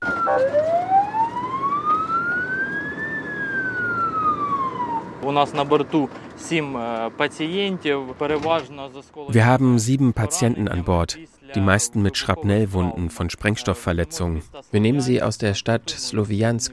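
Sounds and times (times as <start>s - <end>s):
ambulance siren wailing: 0.0s - 5.5s
vehicle engine rumble: 0.0s - 8.8s
speech: 5.3s - 16.7s.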